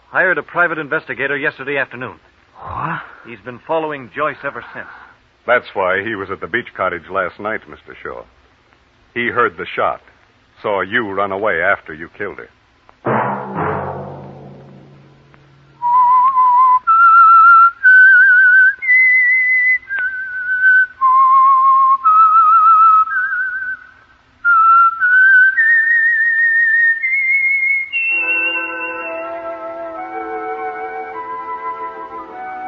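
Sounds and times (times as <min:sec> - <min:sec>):
speech: 0:00.1 - 0:08.4, 0:09.2 - 0:12.6
whistled tune used as a radio program's signature signal: 0:15.7 - 0:32.6.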